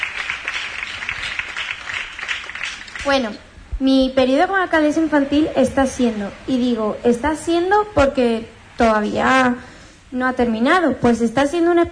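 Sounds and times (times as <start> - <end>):
audience applauding in Huelva: 0.0 - 3.2
speech: 3.0 - 11.9.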